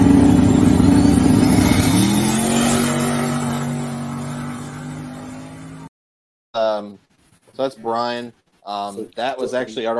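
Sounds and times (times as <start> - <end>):
blue drag race car engine roaring down the track: 0.0 - 5.9
speech: 7.6 - 9.9.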